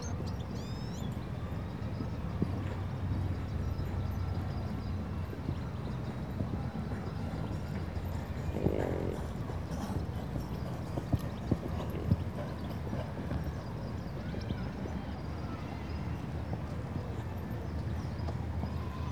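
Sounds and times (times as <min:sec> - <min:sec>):
faint background noise: 0:00.0 - 0:19.0
horse hooves clopping while being exercised outdoors in Spain: 0:01.9 - 0:14.9.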